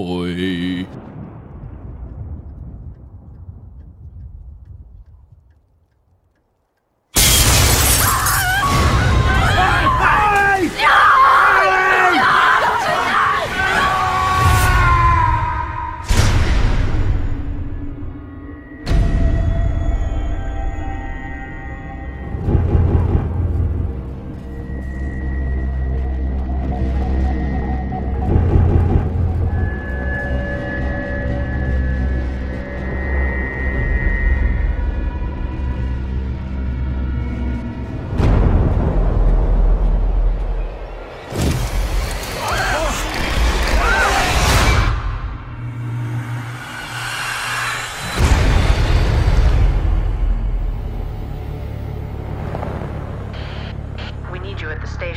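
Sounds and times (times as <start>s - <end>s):
speech: 0.0s - 1.2s
low quiet rumble in a horror movie trailer: 0.0s - 5.7s, 16.0s - 41.3s, 44.4s - 55.1s
tense droning horror trailer music: 7.3s - 55.1s
loud screaming in a horror movie trailer: 8.0s - 16.1s, 42.3s - 44.9s.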